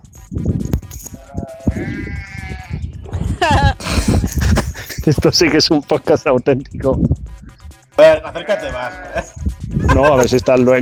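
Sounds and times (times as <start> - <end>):
low rumbling outdoor noise: 0.0 - 8.4
sheep bleating: 1.2 - 2.9, 8.0 - 9.4
laughter: 3.1 - 6.2, 8.0 - 10.8
speech: 5.1 - 7.3, 8.0 - 9.3, 10.0 - 10.8.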